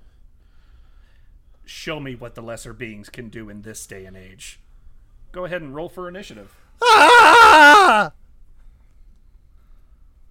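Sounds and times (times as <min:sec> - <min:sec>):
speech: 0:01.8 - 0:04.6, 0:05.3 - 0:08.2
person screaming: 0:06.8 - 0:08.1.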